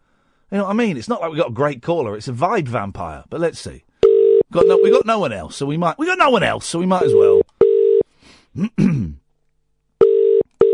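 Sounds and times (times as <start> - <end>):
speech: 0.5 - 3.9, 4.5 - 7.5, 8.5 - 9.2
telephone ringing tone on an outgoing call-back: 4.0 - 5.0, 7.0 - 8.0, 10.0 - 10.7
throat clearing: 8.6 - 9.2.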